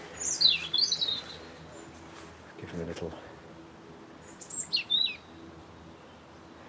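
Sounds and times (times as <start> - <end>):
robin singing: 0.0 - 2.1, 3.8 - 6.6
speech: 2.8 - 3.4.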